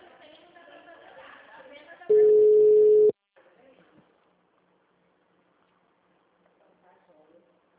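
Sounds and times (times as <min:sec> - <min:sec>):
telephone ringing tone of an outgoing call: 0:02.1 - 0:03.1.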